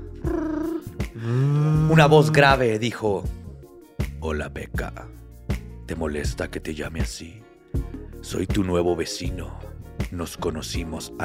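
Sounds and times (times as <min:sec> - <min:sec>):
voice imitating a mobile phone vibrating: 0:00.1 - 0:02.5
speech: 0:01.2 - 0:03.4, 0:04.2 - 0:05.2, 0:05.9 - 0:07.4, 0:08.2 - 0:11.2.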